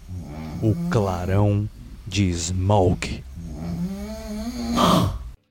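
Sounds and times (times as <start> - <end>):
person snoring loudly with a rasping rumbling breath: 0.0 - 2.0, 3.3 - 5.4
speech: 0.6 - 3.3.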